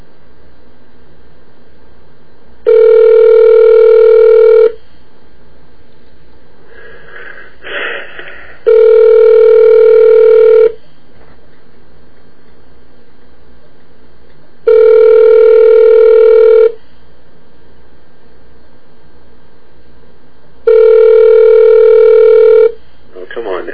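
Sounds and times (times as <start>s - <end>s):
telephone ringing with electronic tone: 2.7s - 4.8s, 8.7s - 10.8s, 14.7s - 16.8s, 20.7s - 22.8s.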